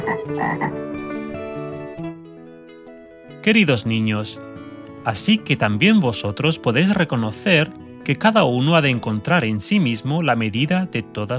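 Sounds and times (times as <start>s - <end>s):
frog croaking: 0.0s - 0.8s
speech: 0.2s - 1.1s, 3.4s - 11.3s.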